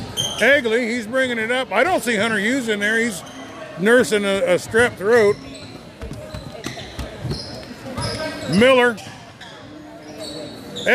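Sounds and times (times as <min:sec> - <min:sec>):
shoe squeaks on a basketball court: 0:00.0 - 0:00.9, 0:01.8 - 0:10.9
murmur of crowd voices: 0:00.0 - 0:10.9
speech: 0:00.4 - 0:05.6, 0:08.5 - 0:09.1
basketball being dribbled on a court during a basketball game: 0:05.7 - 0:08.2.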